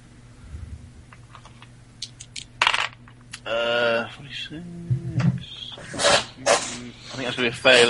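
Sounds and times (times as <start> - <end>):
dice rolling on a table for a tabletop role-playing game check: 2.6 - 3.0
speech: 3.5 - 7.8.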